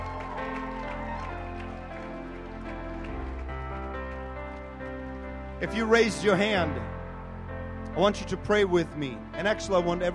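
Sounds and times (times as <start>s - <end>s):
audience clapping hands in a steady lively rhythm: 0.0s - 5.3s
speech: 5.6s - 7.0s, 8.0s - 10.1s.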